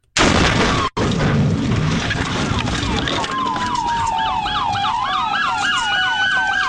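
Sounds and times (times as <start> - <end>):
head-on car collision recorded on a dash cam: 0.2 - 3.4
wailing emergency siren: 2.0 - 6.6.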